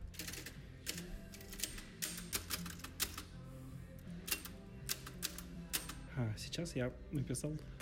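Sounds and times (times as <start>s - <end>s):
typing on a mechanical typewriter in a coffee shop: 0.1s - 3.2s, 4.3s - 6.0s
speech: 6.2s - 7.7s.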